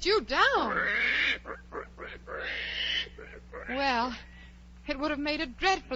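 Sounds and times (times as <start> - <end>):
speech: 0.0 - 0.9, 4.9 - 5.9
pig grunting: 0.6 - 4.1.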